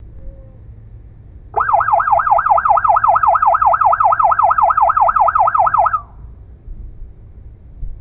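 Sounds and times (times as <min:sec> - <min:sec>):
yelp siren sweeping 700 to 1600 Hz: 0:01.6 - 0:06.2.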